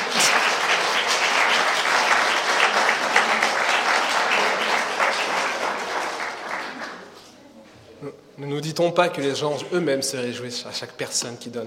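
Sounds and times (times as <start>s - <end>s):
crowd applauding: 0.0s - 7.3s
speech: 8.5s - 11.6s.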